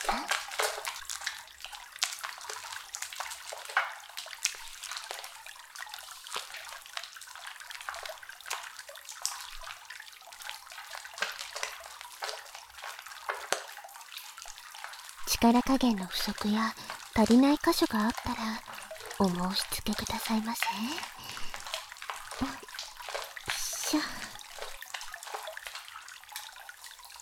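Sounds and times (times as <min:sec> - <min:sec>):
water trickling and splashing as a body is washed: 0:00.0 - 0:27.2
speech: 0:15.4 - 0:21.2, 0:23.9 - 0:24.2.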